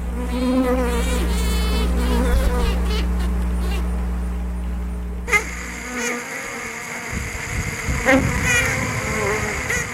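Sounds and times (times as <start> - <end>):
worker bees swarming buzz: 0.0 - 4.2, 5.2 - 9.9.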